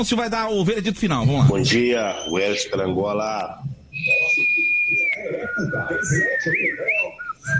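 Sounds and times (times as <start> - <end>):
speech: 0.0 - 7.5
murmuring voices: 1.6 - 7.5
person whistling a high sustained bird-like tone: 3.9 - 7.5.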